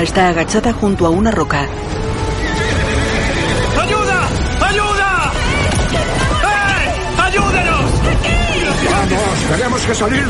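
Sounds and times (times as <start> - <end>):
speech: 0.0 - 2.3, 8.2 - 10.2
horse ridden by a man galloping away: 1.6 - 10.2
horse whinny: 2.1 - 4.4.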